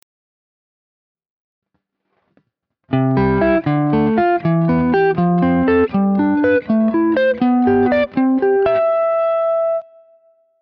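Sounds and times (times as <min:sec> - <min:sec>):
melodic open triads: 0:02.9 - 0:10.0.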